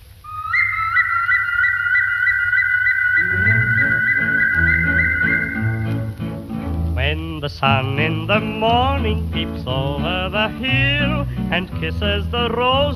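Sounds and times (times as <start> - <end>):
whistled song melody with a gentle warble: 0.3 - 6.4
soft band accompaniment: 3.2 - 12.9
speech: 7.6 - 12.9.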